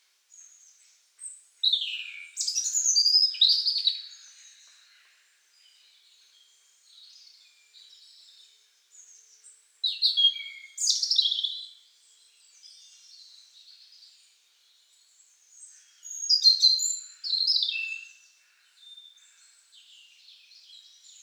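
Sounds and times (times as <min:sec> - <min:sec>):
European robin Erithacus rubecula singing with trills and thin whistles: 0:01.6 - 0:04.0, 0:09.8 - 0:11.7, 0:16.0 - 0:18.2.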